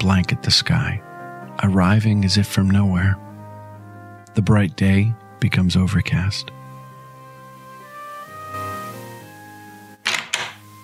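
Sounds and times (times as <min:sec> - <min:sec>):
speech: 0:00.0 - 0:03.2, 0:04.4 - 0:06.6
door locks clicking open at an apartment entrance: 0:10.0 - 0:10.6.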